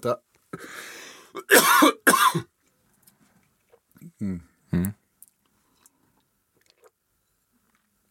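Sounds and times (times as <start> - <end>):
speech: 0.0 - 2.5, 4.2 - 5.0
harsh throat clearing: 1.4 - 2.5
hoarse cough: 1.4 - 2.5.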